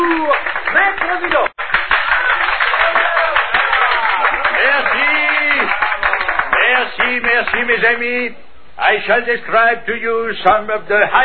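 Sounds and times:
audience applauding a guest at a presentation: 0.0s - 7.7s
speech: 7.8s - 11.2s.

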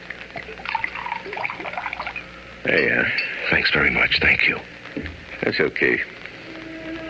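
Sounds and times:
Scotch whisky and water pouring into a glass: 0.3s - 2.3s
speech: 2.6s - 6.2s.

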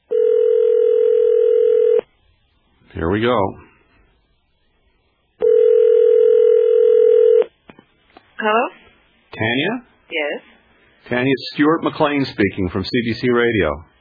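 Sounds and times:
telephone ringback tone: 0.1s - 2.0s, 5.4s - 7.5s
speech: 3.0s - 3.6s, 11.1s - 13.9s.

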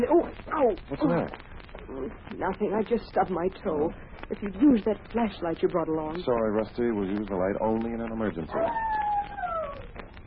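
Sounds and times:
speech: 0.0s - 9.0s
low hum: 0.0s - 10.2s
dog howling: 8.4s - 10.2s.

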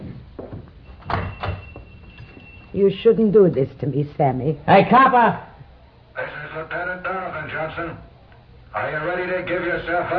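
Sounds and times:
door being opened: 0.9s - 2.8s
speech: 2.7s - 5.5s, 6.2s - 8.1s, 8.7s - 10.1s.

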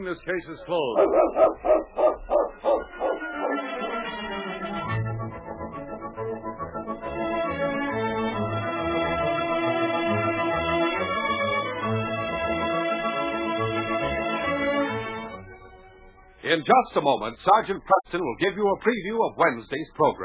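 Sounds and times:
speech: 0.0s - 3.0s, 16.5s - 20.2s
dog barking: 1.0s - 3.9s
orchestral music: 2.7s - 15.9s.

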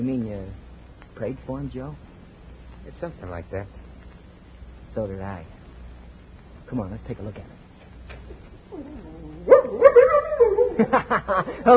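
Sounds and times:
speech: 0.0s - 2.1s, 2.8s - 3.8s, 5.0s - 5.6s, 6.7s - 7.6s, 8.3s - 11.7s
dog whimpering in greeting: 8.7s - 10.8s
dog barking in greeting: 9.5s - 10.8s
laughter: 10.7s - 11.7s.

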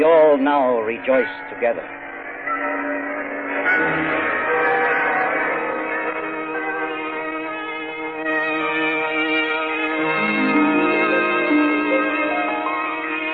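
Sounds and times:
mission church bells ringing: 0.0s - 13.3s
speech: 0.4s - 3.0s, 3.7s - 4.3s.

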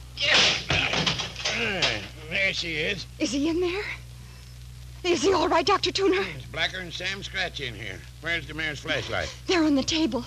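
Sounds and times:
locked door being forced open with a splintering crash: 0.2s - 2.0s
speech: 1.6s - 4.0s, 5.0s - 10.2s.

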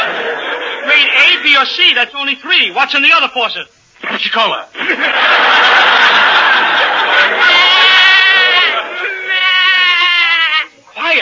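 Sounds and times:
laughter: 0.0s - 1.6s, 4.8s - 10.7s
speech: 1.6s - 6.2s
goat bleating: 7.6s - 10.7s.

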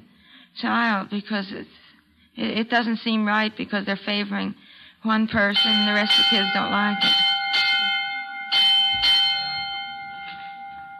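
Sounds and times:
speech: 0.6s - 1.8s, 2.4s - 7.3s
bright electric school bell signalling end of class: 5.5s - 10.9s.

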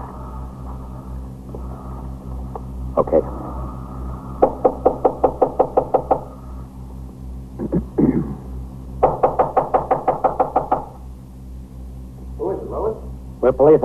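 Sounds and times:
steady low hum: 0.0s - 13.8s
speech: 3.0s - 3.4s, 13.6s - 13.8s
loud rapid knocking on a door: 4.4s - 6.3s, 9.0s - 11.0s.

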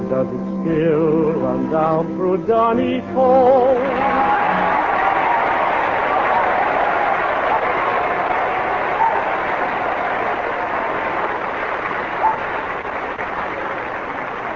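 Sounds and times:
speech: 0.1s - 4.4s
large studio audience applause at a contest: 3.8s - 14.5s.

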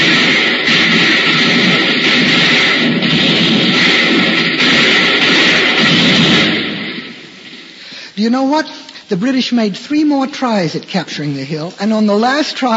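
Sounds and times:
volley of gunfire sound effect with crackling battle din: 0.0s - 7.9s
speech: 8.3s - 12.7s.

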